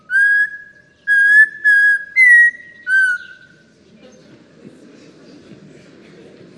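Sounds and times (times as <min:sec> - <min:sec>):
Audubon's Oriole whistled song: 0:00.0 - 0:03.6.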